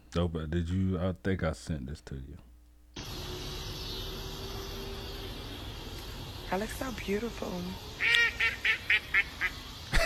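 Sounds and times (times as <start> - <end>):
speech: 0.1 - 2.5, 6.5 - 8.2
duck quacking: 8.0 - 9.6.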